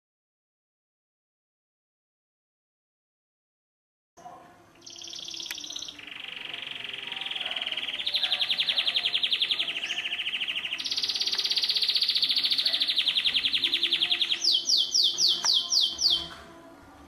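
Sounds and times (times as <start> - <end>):
canary singing a long rapid trill: 4.8 - 16.7.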